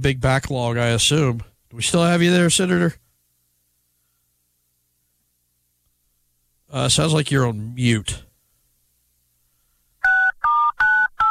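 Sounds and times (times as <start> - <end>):
speech: 0.0 - 3.0, 6.7 - 8.3
telephone keypad dialing tones on a conference call: 10.1 - 11.3.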